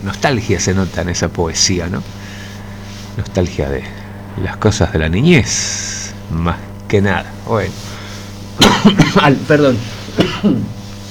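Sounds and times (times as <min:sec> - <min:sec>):
speech: 0:00.0 - 0:02.3, 0:03.2 - 0:07.9, 0:08.6 - 0:10.8
person coughing with throaty rasps: 0:08.6 - 0:09.4, 0:10.0 - 0:10.8.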